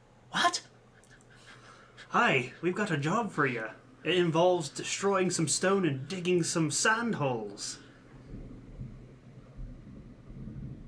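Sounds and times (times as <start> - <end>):
speech: 2.1 - 7.8
thunder rumbling: 8.1 - 10.8.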